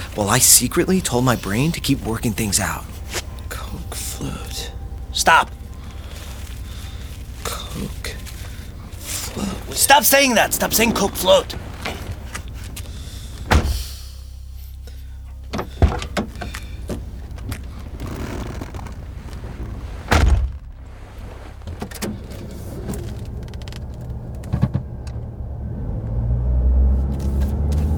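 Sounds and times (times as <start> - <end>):
car driving with steady low engine and road rumble: 0.0 - 27.9
speech: 0.2 - 3.3, 4.2 - 5.6, 7.8 - 8.0, 9.4 - 12.0
sharp knocks and thumps: 13.4 - 13.9, 21.6 - 25.2
car door thud: 13.4 - 14.0, 20.1 - 20.7.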